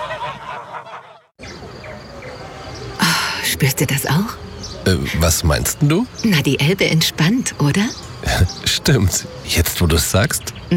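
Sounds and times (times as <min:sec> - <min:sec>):
flock of geese honking: 0:00.0 - 0:01.3
speech: 0:03.6 - 0:10.7.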